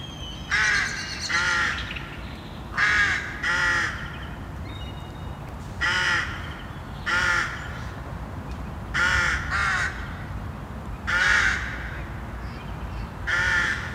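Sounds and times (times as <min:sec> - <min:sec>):
steady outdoor hum: 0:00.0 - 0:13.9
colony of rooks calling from nests in Lund: 0:00.5 - 0:02.1, 0:02.7 - 0:04.4, 0:05.8 - 0:08.0, 0:08.9 - 0:10.3, 0:11.1 - 0:12.2, 0:13.2 - 0:13.9.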